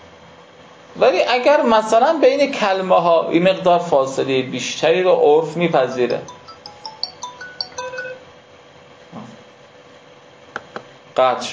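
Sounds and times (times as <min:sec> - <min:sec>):
speech: 0:01.0 - 0:06.4, 0:11.2 - 0:11.5
mobile phone ringtone of bright high beeping tones: 0:05.9 - 0:08.3.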